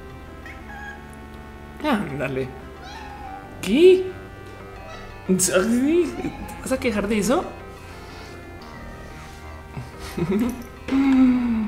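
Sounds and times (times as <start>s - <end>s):
steady low hum: 0.0s - 11.6s
drawn-out cat meow: 0.4s - 1.1s, 2.8s - 3.6s, 6.0s - 6.8s
speech: 1.8s - 3.0s, 3.6s - 4.2s, 5.3s - 7.6s, 10.2s - 11.0s
laughter: 9.7s - 10.7s.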